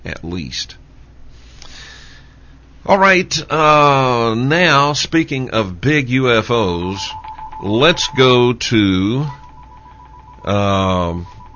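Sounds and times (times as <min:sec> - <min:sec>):
speech: 0:00.3 - 0:00.8, 0:02.8 - 0:09.4, 0:10.4 - 0:11.4
telephone ringing: 0:07.0 - 0:11.5.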